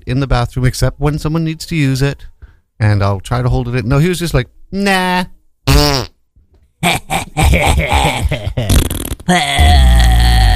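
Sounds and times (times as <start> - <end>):
speech: 0.1 - 6.1, 9.3 - 9.6
person imitating farting with mouth: 5.7 - 6.2, 6.8 - 10.5.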